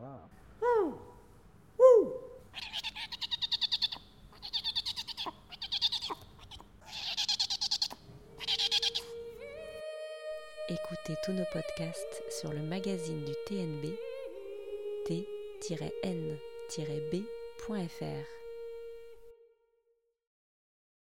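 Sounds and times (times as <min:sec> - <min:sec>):
owl hooting: 0:00.6 - 0:19.3
owl quavering trills: 0:01.8 - 0:09.4
speech: 0:11.2 - 0:14.1, 0:15.1 - 0:18.4.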